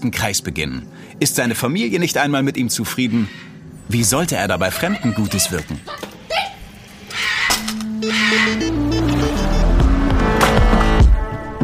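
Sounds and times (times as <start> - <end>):
speech: 0.0 - 6.1
road noise: 0.6 - 11.1
car engine revving while driving through traffic: 6.2 - 11.1.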